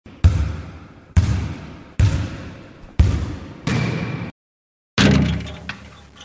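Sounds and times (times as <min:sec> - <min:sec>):
basketball hitting backboard: 0:00.2 - 0:04.3.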